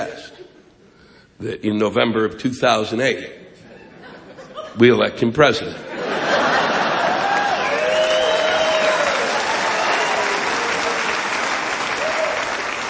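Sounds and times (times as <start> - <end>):
speech: 1.4 - 3.5, 4.8 - 5.9
laughter: 3.6 - 5.0, 5.8 - 9.0
audience applause: 6.6 - 12.8
whoops and voices: 7.2 - 10.7.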